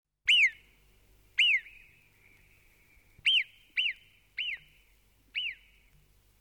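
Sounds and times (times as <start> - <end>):
whistled bird calls: 0.3 - 0.7, 1.4 - 5.9.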